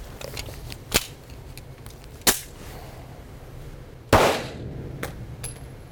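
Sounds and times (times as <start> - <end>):
gunshots during outdoor target shooting: 4.1 - 5.2.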